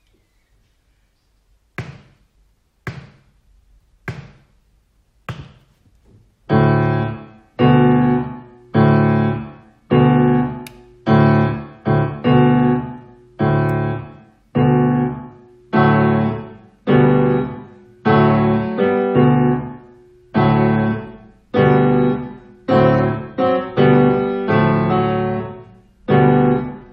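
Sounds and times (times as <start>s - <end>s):
piano duet blues practice: 6.5s - 26.9s.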